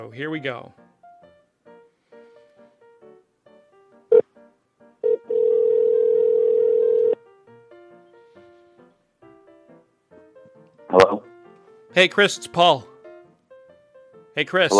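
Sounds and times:
speech: 0.0 - 0.8, 12.0 - 12.9, 14.4 - 14.7
telephone dialing tonal beeps: 5.1 - 7.2.

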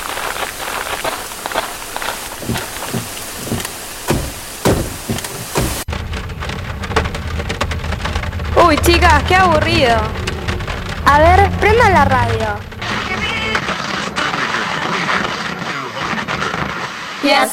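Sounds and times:
heavy rain from an approaching thunderstorm pouring in a forest: 0.0 - 17.0
low rolling thunder rumble: 5.8 - 13.7
speech: 8.7 - 10.2, 11.1 - 12.7, 17.2 - 17.5.

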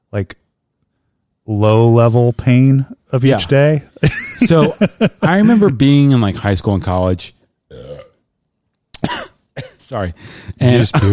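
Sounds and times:
speech: 0.1 - 0.4, 1.5 - 7.9, 9.6 - 11.1
laughter: 3.4 - 5.8
loud guttural burp: 7.7 - 8.2
sharp cough or throat-clearing: 9.0 - 9.9.

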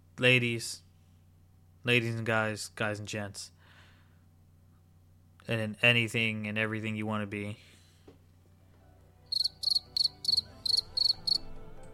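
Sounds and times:
speech: 0.2 - 0.8, 1.8 - 3.6, 5.5 - 7.7
crickets chirping: 9.3 - 11.4.

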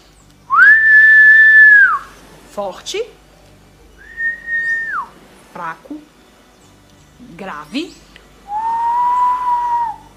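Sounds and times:
human whistling: 0.5 - 2.1, 4.0 - 5.1, 8.5 - 10.1
speech: 2.6 - 3.2, 5.6 - 6.1, 7.2 - 8.1.

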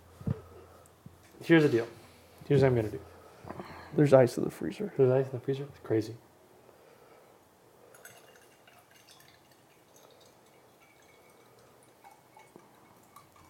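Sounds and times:
speech: 1.4 - 3.1, 3.9 - 6.3
liquid pouring into a glass for a drink: 7.9 - 13.4
small clinks: 7.9 - 13.4.

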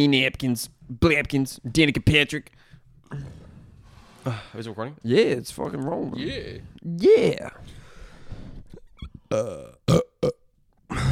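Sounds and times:
speech: 0.0 - 3.4, 4.2 - 7.8, 9.3 - 10.0
short sharp belches: 9.0 - 10.4
loud croaking burp: 9.2 - 11.1.

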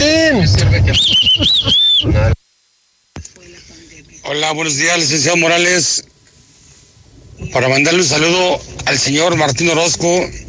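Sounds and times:
loud shrill warbling human whistle: 0.9 - 2.1
speech: 4.3 - 6.1, 7.4 - 10.4.

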